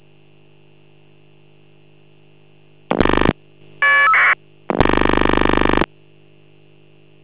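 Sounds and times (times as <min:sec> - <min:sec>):
FSK data tones after ring: 0:02.9 - 0:05.9
phone ringing: 0:03.0 - 0:05.8.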